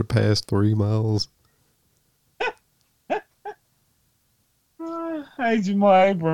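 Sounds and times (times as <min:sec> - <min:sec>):
speech: 0:00.0 - 0:01.4, 0:05.4 - 0:06.3
coyote yelping: 0:02.4 - 0:03.6.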